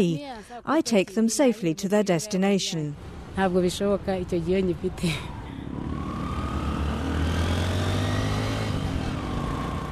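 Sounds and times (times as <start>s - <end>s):
speech: 0.0s - 5.4s
city rush hour traffic rumble with cars crawling in congestion: 0.0s - 9.8s
car engines droning and revving low: 3.0s - 9.8s.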